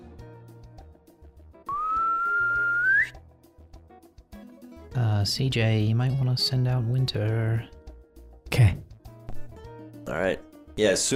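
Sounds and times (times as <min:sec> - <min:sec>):
sustained whistle rising in pitch: 0:01.7 - 0:03.2
speech: 0:05.2 - 0:07.8, 0:10.2 - 0:11.1.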